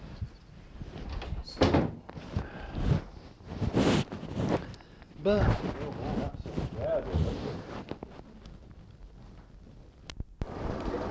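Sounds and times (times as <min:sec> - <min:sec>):
rustle: 0:00.0 - 0:11.1
door pushed and shut with rattling and a clunk: 0:01.0 - 0:02.0
speech: 0:05.2 - 0:07.9.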